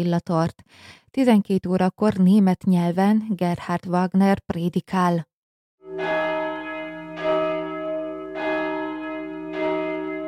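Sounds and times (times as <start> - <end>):
speech: 0.0 - 5.3, 5.9 - 6.3
church bells ringing: 5.8 - 10.2.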